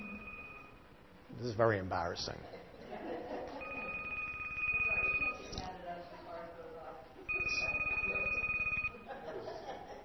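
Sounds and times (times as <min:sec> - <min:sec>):
phone ringing in long buzzy bursts: 0:00.0 - 0:00.8, 0:03.6 - 0:05.7, 0:07.3 - 0:09.1
speech: 0:01.4 - 0:02.6
people chuckling during a class: 0:02.5 - 0:04.1, 0:08.9 - 0:10.0.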